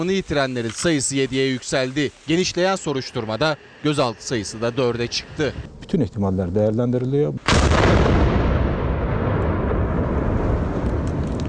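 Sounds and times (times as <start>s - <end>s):
speech: 0.0s - 7.9s
fireworks factory explosion booms and crackling blasts in Hendek Sakarya: 7.4s - 11.4s.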